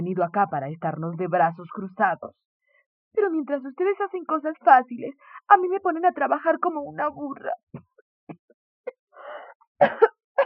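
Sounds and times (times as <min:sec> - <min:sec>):
speech: 0:00.2 - 0:02.5, 0:03.1 - 0:08.4, 0:09.8 - 0:10.1
raspy breathy rasp: 0:02.6 - 0:02.9, 0:05.2 - 0:05.5, 0:09.2 - 0:09.6
person coughing with short dry hacks: 0:09.8 - 0:10.4.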